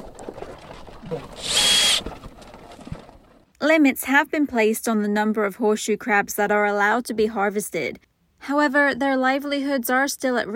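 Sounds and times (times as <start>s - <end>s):
speech: 1.1s - 2.1s, 3.6s - 10.5s
small power drill boring into horseshoe crab shell: 1.3s - 2.1s.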